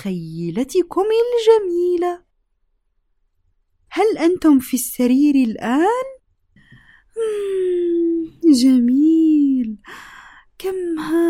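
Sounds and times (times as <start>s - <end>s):
speech: 0.0s - 2.2s, 3.9s - 6.2s, 7.2s - 11.2s
person taking a deep breath during a guided relaxation: 6.5s - 7.6s, 9.8s - 10.6s.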